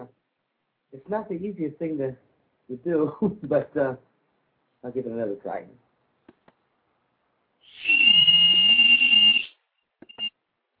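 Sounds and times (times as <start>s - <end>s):
speech: 0.9s - 4.1s, 4.8s - 5.8s
shrill whistle blast from a whistle with thumb hole: 7.6s - 10.3s.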